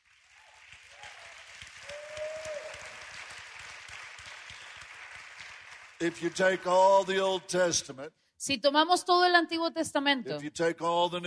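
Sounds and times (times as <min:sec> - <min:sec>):
audience applauding: 0:00.0 - 0:07.5
speech: 0:06.0 - 0:11.2.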